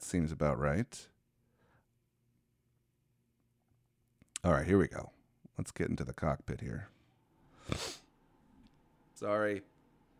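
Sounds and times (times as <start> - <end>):
speech: 0.1 - 1.1, 4.4 - 7.0, 7.7 - 8.0, 9.2 - 9.7
quick wet sniffle through the nose: 7.6 - 8.0.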